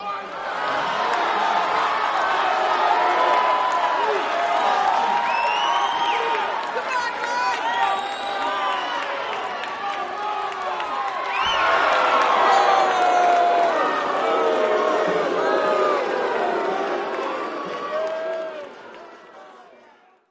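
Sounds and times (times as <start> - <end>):
crowd walla at a boxing match: 0.0 - 20.2.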